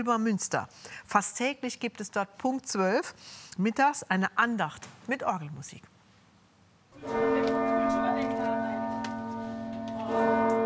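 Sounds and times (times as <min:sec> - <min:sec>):
speech: 0:00.0 - 0:05.9, 0:07.0 - 0:07.6
deep church bell striking noon: 0:07.0 - 0:10.6.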